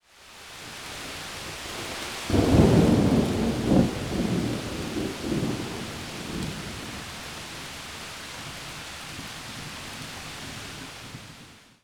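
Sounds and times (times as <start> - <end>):
rain: 0.0 - 11.8
thunder: 2.3 - 7.0.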